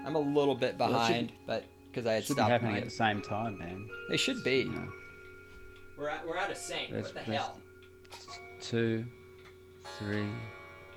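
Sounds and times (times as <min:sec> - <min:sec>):
speech: 0:00.1 - 0:05.0, 0:06.0 - 0:09.2, 0:09.8 - 0:10.6
clock chiming the hour with bell-like dongs: 0:02.3 - 0:10.9.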